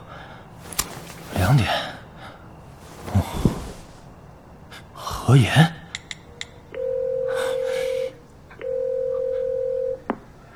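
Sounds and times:
faint hiss: 0.0 - 6.2
speech: 1.5 - 1.9, 5.3 - 5.8
long mid-pitched telephone tones as a call is placed: 6.8 - 10.1.

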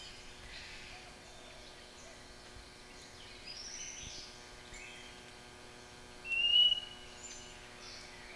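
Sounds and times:
White-rumped shama song of whistled notes and soft warbling: 6.3 - 7.3.

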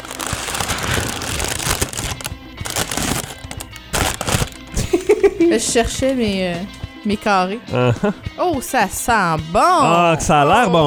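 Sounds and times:
parchment paper being crinkled: 0.0 - 4.8
speech: 5.4 - 10.8.

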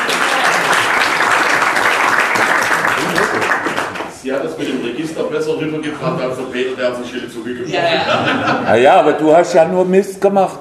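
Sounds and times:
audience applauding at a training session in Stuttgart: 0.0 - 4.2
laughter: 2.8 - 3.8, 7.7 - 9.1
speech: 4.3 - 10.5.

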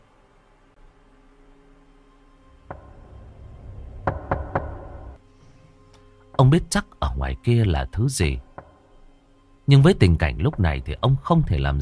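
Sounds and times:
knocking on a door: 2.7 - 3.2, 4.0 - 5.2, 8.6 - 8.8
speech: 6.4 - 8.5, 9.7 - 11.8.

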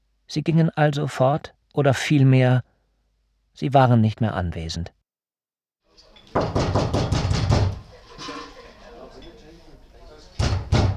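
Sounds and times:
speech: 0.3 - 2.7, 3.6 - 5.0
knocking on a small door: 6.3 - 7.8, 10.4 - 10.9.

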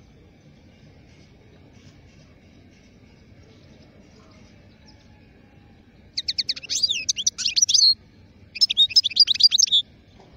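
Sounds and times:
wild European goldfinch song: 6.1 - 9.8.

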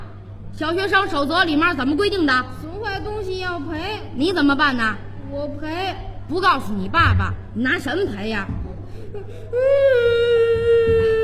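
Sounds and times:
speech: 0.6 - 10.2
child crying: 9.1 - 11.2.

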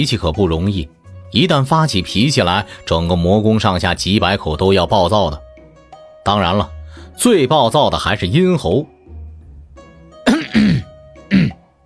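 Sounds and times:
speech: 0.0 - 5.4, 6.2 - 8.9
man coughing: 10.2 - 11.6.

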